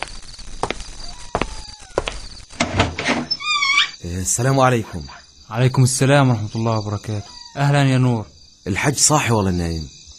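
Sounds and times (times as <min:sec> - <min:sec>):
door being opened with dull thuds and scraping creaks: 0:01.4 - 0:04.0
speech: 0:04.0 - 0:10.1.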